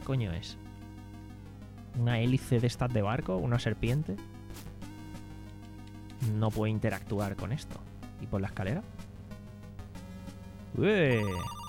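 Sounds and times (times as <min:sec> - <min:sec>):
speech: 0:00.1 - 0:00.7, 0:02.0 - 0:04.7, 0:06.2 - 0:09.0, 0:10.8 - 0:11.6
synthesized telephone ringtone from an MSX 1 video game: 0:11.1 - 0:11.6.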